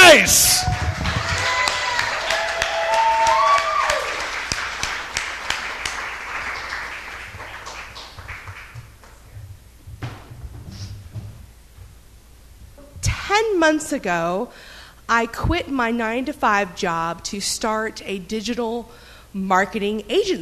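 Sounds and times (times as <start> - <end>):
whooping cheer: 0.0 - 4.4
audience applause: 0.0 - 9.1
speech: 13.6 - 20.4.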